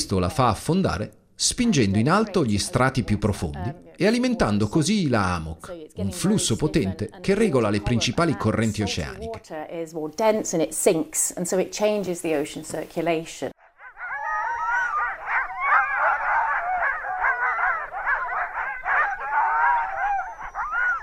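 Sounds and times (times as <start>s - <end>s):
speech: 0.1s - 13.6s
sled dogs in northern Greenland barking and yelping: 13.6s - 21.0s.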